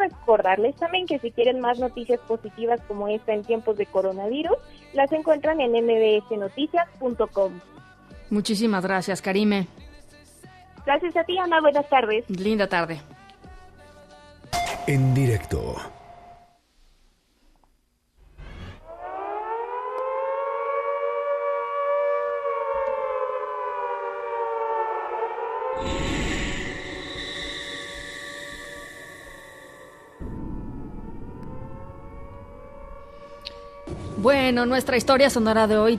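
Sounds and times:
speech: 0.3s - 9.8s, 10.8s - 13.2s, 14.9s - 16.0s, 34.2s - 35.9s
World War II air-raid siren wailing: 18.8s - 34.7s.

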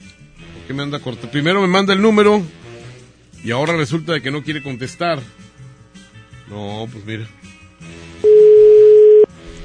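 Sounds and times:
speech: 0.7s - 2.6s, 3.4s - 5.4s, 6.5s - 7.5s
telephone dial tone while redialing a call: 8.3s - 9.3s.

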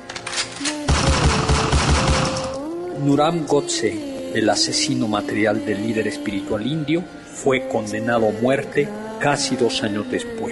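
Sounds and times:
loud burst of gunshots: 0.9s - 2.6s
speech: 3.0s - 10.4s.

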